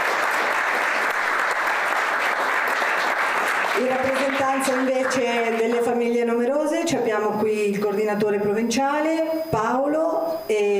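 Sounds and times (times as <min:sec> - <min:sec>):
steady dense audience applause: 0:00.0 - 0:05.9
speech: 0:03.8 - 0:10.7.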